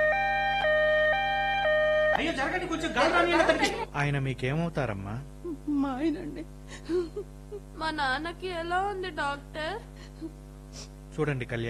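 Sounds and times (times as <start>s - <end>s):
ambulance siren two-tone wail: 0.0s - 2.7s
speech: 2.2s - 11.6s.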